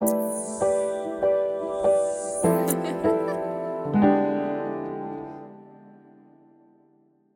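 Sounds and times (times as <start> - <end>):
jazzy piano logo melody: 0.0 - 6.1
woman laughing: 2.6 - 3.7.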